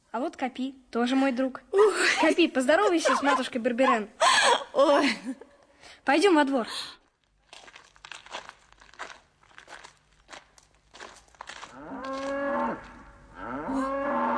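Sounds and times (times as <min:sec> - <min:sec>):
speech: 0:00.2 - 0:07.0
rustling and crinkling: 0:07.0 - 0:13.2
shuffling footsteps: 0:07.4 - 0:13.1
cow mooing: 0:11.7 - 0:14.3.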